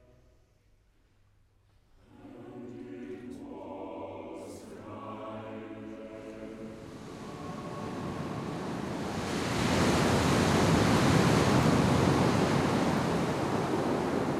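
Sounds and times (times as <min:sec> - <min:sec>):
rough foaming sea waves roaring: 0:06.4 - 0:14.3.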